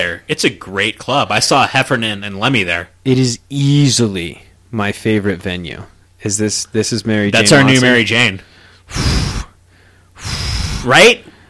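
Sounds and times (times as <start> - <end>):
speech: 0.0 - 9.3, 10.2 - 11.3
person imitating heavy panting with breathy huffs: 8.9 - 9.6, 10.2 - 11.0.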